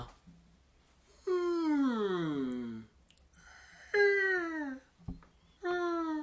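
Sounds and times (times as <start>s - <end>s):
person vocally imitating a blue whale song with low moaning calls: 1.2s - 2.9s, 3.9s - 4.9s, 5.6s - 6.2s.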